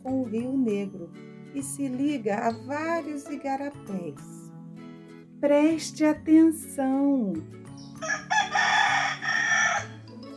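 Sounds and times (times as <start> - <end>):
speech: 0.2 - 4.4, 5.4 - 8.2
rooster crowing: 8.0 - 10.1.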